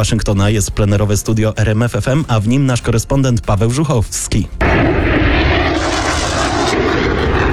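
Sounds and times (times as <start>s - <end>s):
speech: 0.0s - 5.2s
military aircraft engines roaring in flyover: 4.6s - 7.5s.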